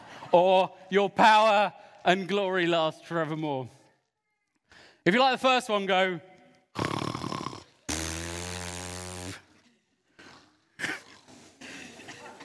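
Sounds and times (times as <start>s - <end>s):
speech: 0.3s - 3.8s, 5.0s - 6.9s
voice making loud exaggerated snoring sounds: 6.8s - 8.6s.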